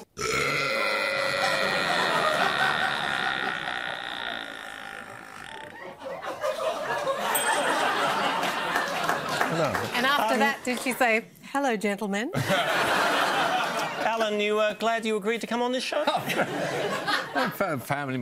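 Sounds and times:
woman's record loudest burp: 0.0 - 6.0
laughter: 1.2 - 10.6, 12.4 - 14.5, 16.0 - 17.8
speech: 10.2 - 13.0, 14.1 - 18.2.

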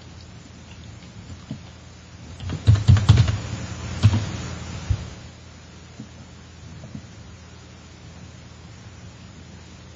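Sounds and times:
typing on a computer keyboard: 2.4 - 3.4.

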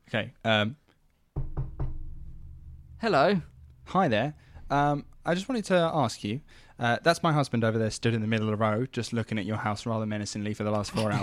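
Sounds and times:
speech: 0.1 - 0.8, 3.0 - 11.2
firm knocks on a wooden door: 1.4 - 2.3.

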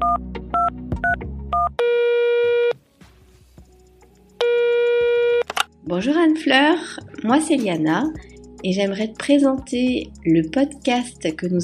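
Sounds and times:
rapid short telephone dialing beeps: 0.0 - 2.7, 4.4 - 5.6
long steady electronic telephone tone: 4.4 - 5.4
speech: 5.9 - 11.6.

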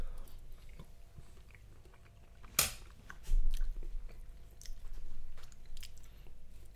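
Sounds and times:
people chewing and biting into a garlicky dish: 0.0 - 6.7.

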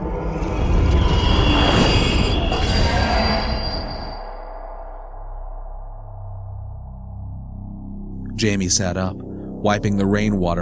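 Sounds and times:
monstrous creature screeching as it passes overhead: 0.3 - 5.1
speech: 8.4 - 10.5.

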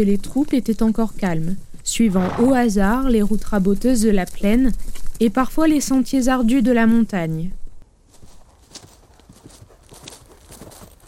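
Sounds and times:
speech: 0.0 - 7.6
horse hooves clip-clopping on hard ground in a wild ravine: 8.1 - 11.0.

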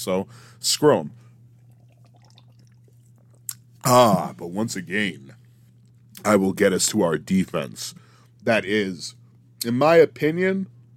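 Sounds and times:
speech: 0.0 - 1.2, 3.8 - 5.4, 6.2 - 10.8
person taking a quick sip of a drink: 1.6 - 3.7
soft wet mouth and swallowing sounds: 1.6 - 3.7.

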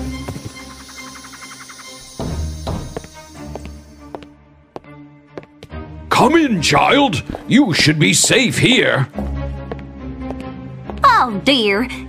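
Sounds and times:
horse hooves clip-clopping as a rider rides off out of the woods: 0.0 - 3.8
speech: 6.2 - 9.2, 11.2 - 12.0.

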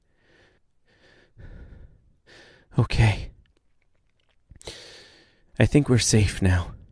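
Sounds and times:
soft airy breathing: 0.0 - 3.4, 4.6 - 5.6
speech: 2.8 - 3.2, 5.6 - 6.8.

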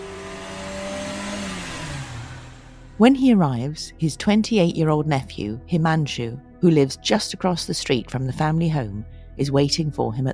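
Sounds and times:
car engine revving as the driver races off: 0.0 - 3.0
road noise: 0.0 - 3.0
speech: 3.0 - 10.3.

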